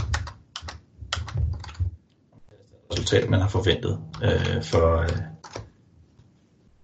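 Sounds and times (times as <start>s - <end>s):
typing on a computer keyboard: 0.0s - 2.0s, 4.1s - 5.7s
speech: 3.0s - 5.3s.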